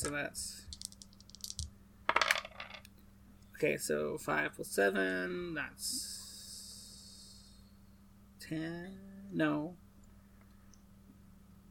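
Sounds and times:
speech: 0.0 - 0.8, 3.6 - 6.2, 8.5 - 9.8
dice rolling on a hard table: 0.0 - 2.9.

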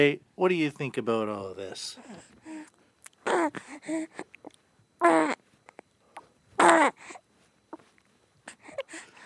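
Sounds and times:
speech: 0.0 - 2.4, 3.4 - 4.4, 5.0 - 5.4
very young infant boy babbling and cooing: 2.0 - 4.4, 5.0 - 5.4, 6.6 - 7.2.

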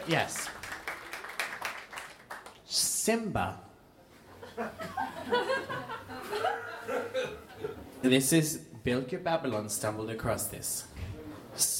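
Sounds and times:
speech: 0.0 - 0.6, 2.7 - 3.7, 4.6 - 11.0, 11.6 - 11.7
audience applause: 0.0 - 2.6
laughter: 4.2 - 8.0.

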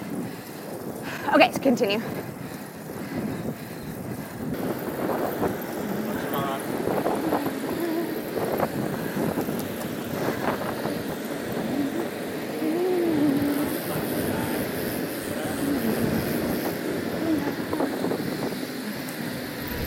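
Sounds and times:
gusty wind buffeting the microphone: 0.0 - 19.8
steady traffic noise: 0.0 - 19.8
speech: 1.3 - 2.3
street sweeper low mechanical rumble: 4.0 - 19.8.

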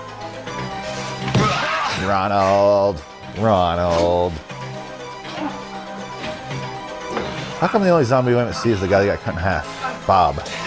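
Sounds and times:
speech: 1.2 - 4.5, 7.6 - 10.6
cartoon-style thump with a brief ringing tail: 1.3 - 2.0.

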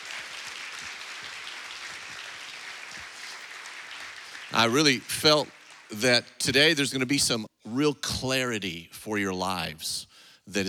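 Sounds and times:
audience clapping: 0.0 - 7.1
speech: 4.5 - 10.6.

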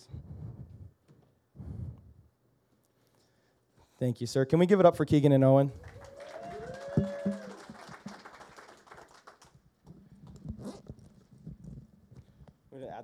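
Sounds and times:
speech: 4.0 - 5.9
rustling and handling noises: 9.8 - 12.8
backpack zipper being unzipped: 10.2 - 11.8.

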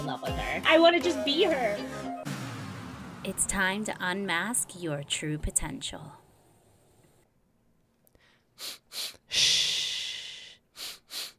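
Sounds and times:
speech: 0.1 - 2.1, 3.2 - 6.2, 8.6 - 8.8
quick sharp breaths in breath work exercise: 8.1 - 11.3
long forceful exhale in breath work exercise: 8.2 - 11.3.

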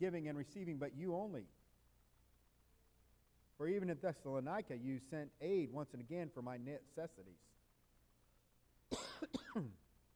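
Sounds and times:
speech: 0.0 - 1.6, 3.6 - 7.6, 9.2 - 9.8
person coughing: 8.9 - 9.8.

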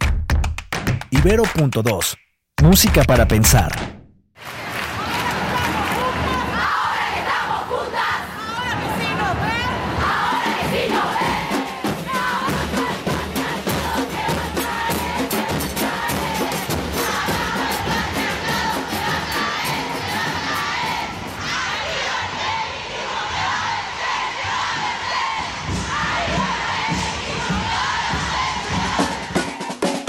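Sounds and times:
speech: 1.1 - 4.6
huge crowd chanting and shouting in unison at a street march: 4.4 - 30.0.

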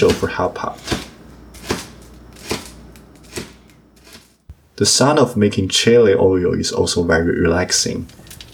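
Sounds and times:
speech: 0.0 - 1.0, 4.8 - 8.2
knife chopping green onion, coriander and garlic on a board: 0.0 - 4.3.

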